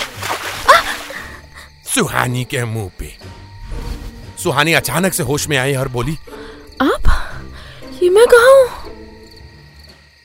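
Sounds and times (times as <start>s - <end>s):
glassful of water thrown onto a person's face splashing: 0.0s - 1.5s
faint watery trickle: 0.0s - 1.7s
speech: 2.0s - 3.4s, 4.4s - 6.9s, 8.0s - 8.8s.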